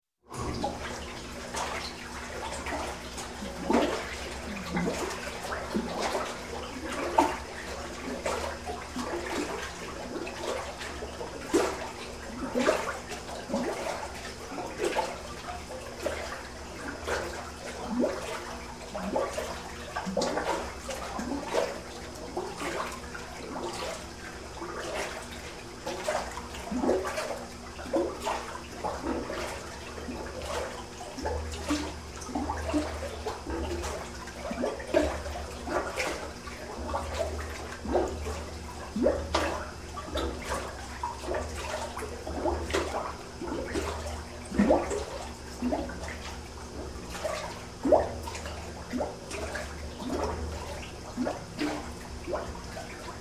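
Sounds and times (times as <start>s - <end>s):
milk being stirred in an industrial milk tank: 0.2s - 53.1s.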